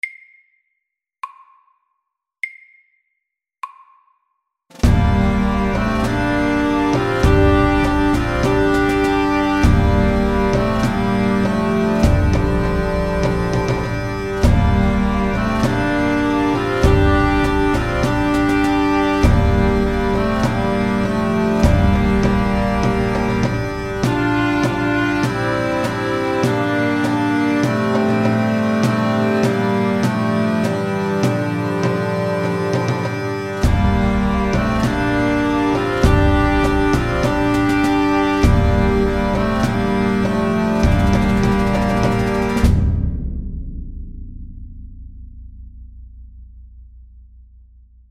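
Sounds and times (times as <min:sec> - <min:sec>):
bagpipes: 0:04.8 - 0:42.9
drums: 0:04.8 - 0:45.9.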